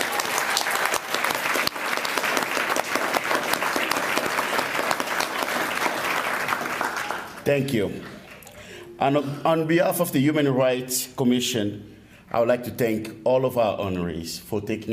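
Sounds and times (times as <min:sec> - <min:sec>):
audience applauding in a large room: 0:00.0 - 0:08.6
speech: 0:07.4 - 0:08.2, 0:09.0 - 0:14.9.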